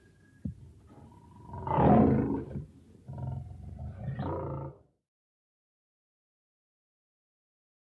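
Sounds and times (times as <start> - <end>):
lion roar: 1.0 - 4.9.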